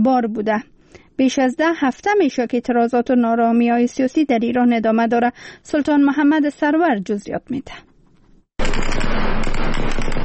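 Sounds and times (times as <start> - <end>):
speech: 0.0 - 7.9
loud rapid gunfire: 8.6 - 10.2.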